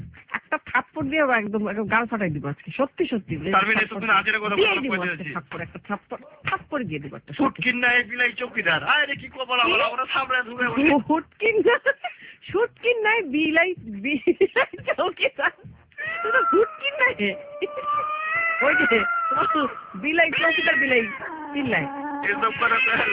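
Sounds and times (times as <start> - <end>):
voices: 0.3 - 23.1
cat meowing: 16.0 - 23.1.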